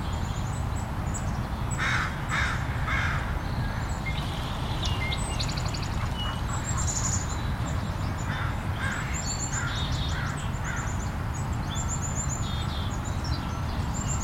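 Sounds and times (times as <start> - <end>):
smaller birds chirping and trilling in a park: 0.0 - 14.2
crows cawing in a park: 1.8 - 3.8, 8.2 - 10.9.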